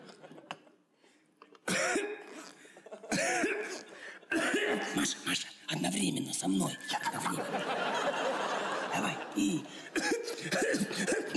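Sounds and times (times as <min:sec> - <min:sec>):
laughter: 0:00.0 - 0:00.8, 0:02.7 - 0:03.1, 0:07.0 - 0:11.3
person coughing harshly: 0:01.7 - 0:05.2, 0:09.9 - 0:11.3
speech: 0:06.0 - 0:07.6.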